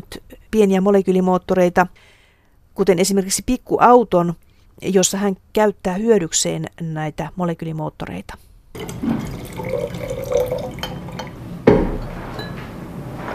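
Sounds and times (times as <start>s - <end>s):
speech: 0.0s - 2.2s, 2.8s - 9.4s
water running from a tap in a laboratory: 8.8s - 11.4s
glassy clinks: 8.8s - 12.7s
sharp knock: 11.7s - 12.1s.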